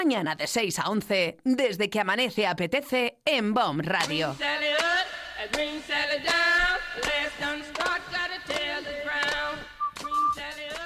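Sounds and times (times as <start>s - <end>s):
speech: 0.0s - 8.1s
rhythmic musical backing with sharp percussive hits: 4.0s - 10.8s
person whistling a bright bouncy tune: 9.8s - 10.7s.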